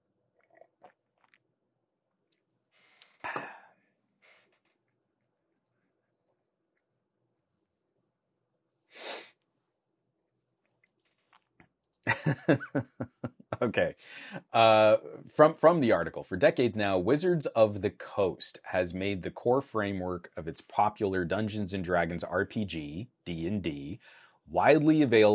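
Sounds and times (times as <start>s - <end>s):
person sipping coffee: 0.4s - 1.6s, 2.3s - 5.0s, 10.7s - 11.6s
laughter: 12.1s - 13.8s
speech: 12.1s - 25.3s.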